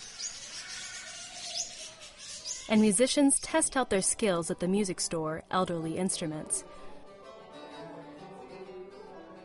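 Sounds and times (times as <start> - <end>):
birds chirping in a pet store: 0.0 - 4.1
speech: 2.7 - 6.8.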